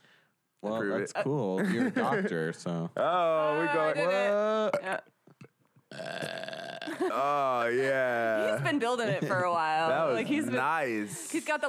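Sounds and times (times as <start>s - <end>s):
speech: 0.6s - 5.2s, 6.0s - 11.6s
long loud rumbling burp: 5.9s - 7.7s.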